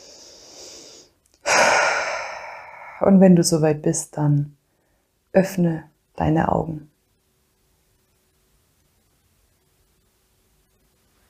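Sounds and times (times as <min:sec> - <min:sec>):
deep breath in and out at the close of a meditation: 0:00.0 - 0:03.0
speech: 0:03.0 - 0:04.6, 0:05.3 - 0:06.9.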